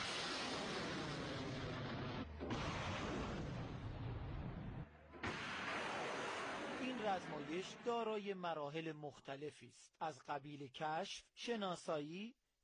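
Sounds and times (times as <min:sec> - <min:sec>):
air defense missile launch roar: 0:00.0 - 0:07.8
speech: 0:07.1 - 0:12.4.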